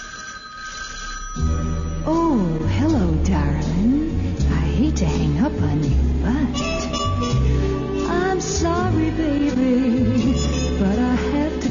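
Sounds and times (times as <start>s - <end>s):
telephone ringing with electronic tones: 0.0s - 2.0s
deeper musical tone of a radio jingle: 1.4s - 11.6s
speech: 3.2s - 7.3s.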